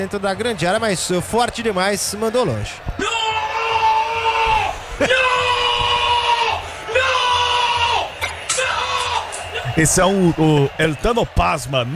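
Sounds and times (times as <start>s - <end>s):
speech: 0.0s - 3.2s, 5.0s - 5.3s, 9.8s - 11.9s
football fan yelling in a stadium: 2.9s - 11.9s.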